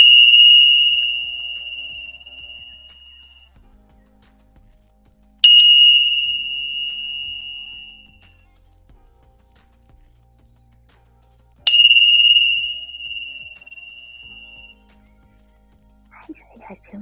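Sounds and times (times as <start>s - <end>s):
small bell struck with a bright high pure ringing tone: 0.0s - 3.6s, 5.4s - 8.3s, 11.7s - 14.8s.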